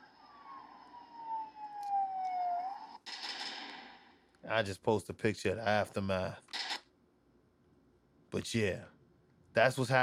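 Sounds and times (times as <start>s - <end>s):
police car siren wailing during a chase: 0.0s - 3.1s
speech: 4.5s - 6.5s, 8.4s - 9.0s, 9.6s - 10.0s.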